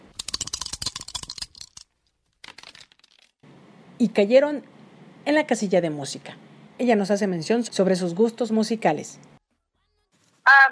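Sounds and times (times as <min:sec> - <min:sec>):
dice rattling and clattering: 0:00.1 - 0:03.4
speech: 0:04.0 - 0:09.3.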